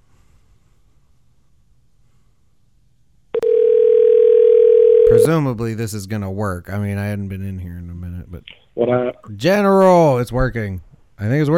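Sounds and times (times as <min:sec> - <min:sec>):
click on a telephone line: 0:03.4 - 0:05.2
speech: 0:05.2 - 0:11.5.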